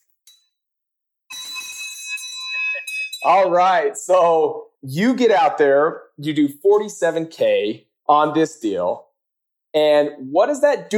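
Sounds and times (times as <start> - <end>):
small victory handbell ringing: 1.3 - 3.3
speech: 2.8 - 9.1, 9.7 - 10.9.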